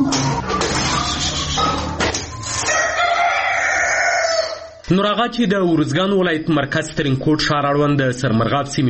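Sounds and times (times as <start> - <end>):
domestic chickens clucking at a household poultry farm near Tarinkot: 0.0 - 4.9
rooster crowing at a household poultry farm near Tarinkot: 1.0 - 4.8
speech: 4.9 - 8.8.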